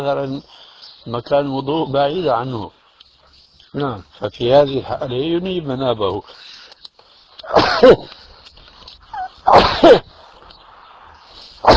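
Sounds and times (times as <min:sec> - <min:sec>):
speech: 0:00.0 - 0:02.8, 0:03.7 - 0:06.5, 0:07.5 - 0:08.2
person sneezing: 0:07.4 - 0:08.2, 0:09.1 - 0:10.2.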